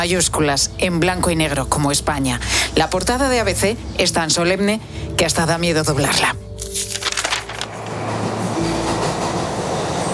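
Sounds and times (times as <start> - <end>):
speech: 0.0 - 6.9
subway train running through a metro station: 7.7 - 10.1.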